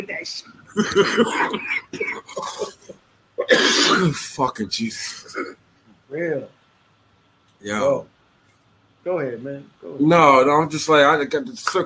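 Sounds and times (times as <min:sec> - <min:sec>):
speech: 0:00.2 - 0:02.5, 0:03.6 - 0:05.2, 0:06.1 - 0:06.6, 0:07.6 - 0:08.1, 0:09.0 - 0:11.8
person coughing: 0:00.7 - 0:04.2, 0:05.2 - 0:05.6.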